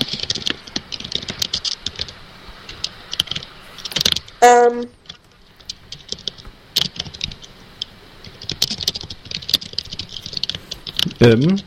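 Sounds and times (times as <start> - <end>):
typing on a computer keyboard: 0.0 - 2.2, 5.1 - 7.5, 8.3 - 11.2
low steady hiss: 0.0 - 11.6
speech: 4.4 - 5.0, 11.2 - 11.6.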